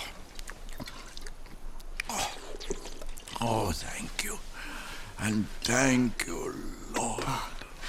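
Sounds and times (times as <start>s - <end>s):
water pouring from a canteen: 2.2s - 3.6s
speech: 3.4s - 4.5s, 5.2s - 7.5s.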